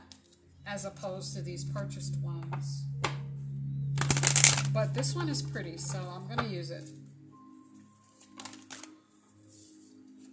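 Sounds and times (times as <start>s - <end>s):
low steady hum: 0.0s - 8.6s
speech: 0.7s - 3.1s, 4.7s - 7.0s
deck of playing cards being shuffled: 8.2s - 8.9s
cards popping out of deck: 8.4s - 8.9s.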